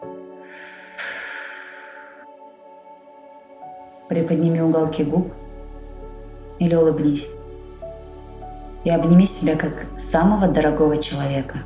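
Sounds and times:
slow soft exhale through the mouth during a breathwork exercise: 0:00.3 - 0:02.6
speech: 0:04.1 - 0:05.4, 0:06.6 - 0:07.4, 0:08.8 - 0:11.6.

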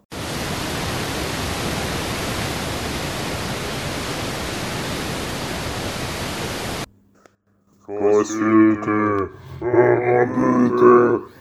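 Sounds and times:
rushing river water near a waterfall: 0:00.0 - 0:06.9
speech: 0:07.9 - 0:11.4.

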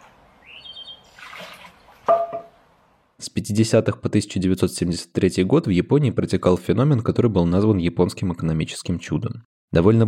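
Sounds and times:
trickling water in a garden: 0:00.0 - 0:02.6
birds chirping faintly in a garden: 0:00.3 - 0:01.2
bamboo water fountain knocking: 0:01.4 - 0:02.6
speech: 0:03.4 - 0:10.0.

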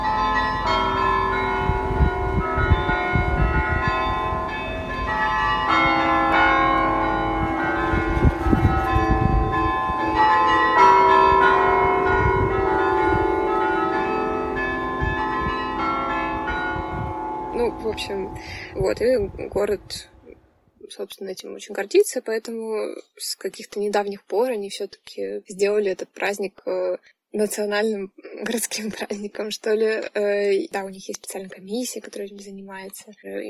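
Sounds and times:
bells of the huge cathedral in the centre of Utrecht pealing: 0:00.0 - 0:19.4
speech: 0:19.5 - 0:20.2, 0:20.9 - 0:33.4.

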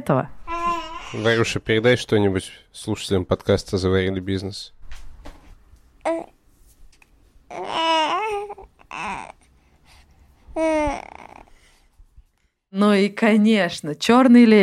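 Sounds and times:
speech: 0:00.0 - 0:00.4, 0:01.1 - 0:04.8, 0:12.9 - 0:14.6
baby babbling: 0:00.4 - 0:01.6, 0:06.0 - 0:06.4, 0:07.5 - 0:09.5, 0:10.6 - 0:11.6.

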